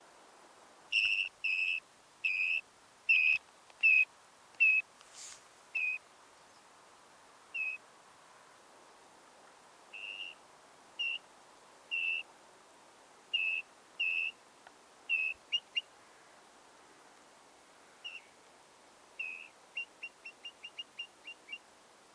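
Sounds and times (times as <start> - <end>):
Eurasian dotterel calling: 0.9 - 4.9, 5.7 - 6.6, 7.5 - 7.8, 9.9 - 10.4, 11.0 - 11.2, 11.9 - 12.3, 13.3 - 14.4, 15.1 - 15.9, 18.0 - 18.4, 19.2 - 21.6.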